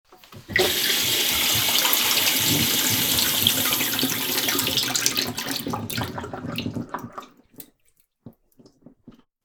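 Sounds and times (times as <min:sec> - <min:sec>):
washbasin tap running: 0:00.2 - 0:07.4.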